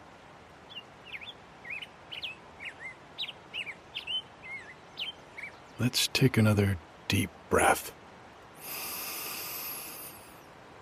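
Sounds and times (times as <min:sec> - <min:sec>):
faint hiss: 0:00.0 - 0:10.8
grosbeak song by a creek: 0:00.6 - 0:06.5
speech: 0:05.8 - 0:08.0.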